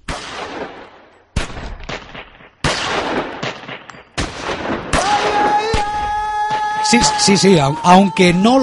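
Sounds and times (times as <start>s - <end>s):
gunshot blasts in an opera excerpt: 0.0s - 7.4s
speech: 6.9s - 8.6s.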